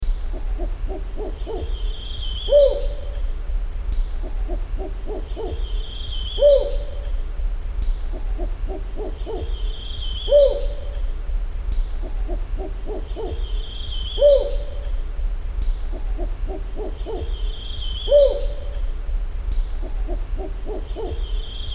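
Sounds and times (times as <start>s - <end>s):
Rufous Banded Owl calling: 0.3s - 3.4s, 4.0s - 7.3s, 7.9s - 11.2s, 11.8s - 21.7s.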